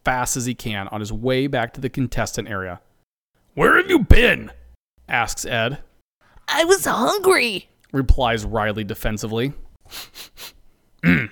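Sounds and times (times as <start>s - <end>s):
speech: 0.0s - 2.9s, 3.6s - 5.9s, 6.5s - 11.2s
man suspiciously sniffing the air: 9.8s - 10.6s.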